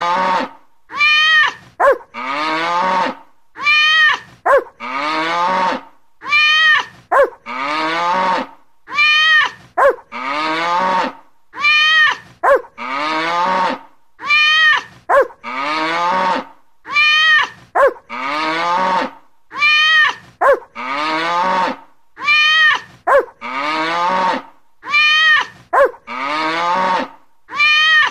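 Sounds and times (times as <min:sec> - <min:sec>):
cow: 0:00.0 - 0:28.1
cat: 0:00.9 - 0:02.0, 0:03.6 - 0:04.6, 0:06.2 - 0:07.3, 0:08.9 - 0:10.0, 0:11.6 - 0:12.6, 0:14.2 - 0:15.3, 0:16.9 - 0:18.0, 0:19.6 - 0:20.6, 0:22.2 - 0:23.3, 0:24.8 - 0:26.0, 0:27.5 - 0:28.1
dog: 0:01.8 - 0:02.2, 0:04.4 - 0:04.8, 0:07.1 - 0:07.5, 0:09.7 - 0:10.1, 0:12.4 - 0:12.8, 0:15.0 - 0:15.4, 0:17.7 - 0:18.1, 0:20.4 - 0:20.8, 0:23.0 - 0:23.4, 0:25.7 - 0:26.1.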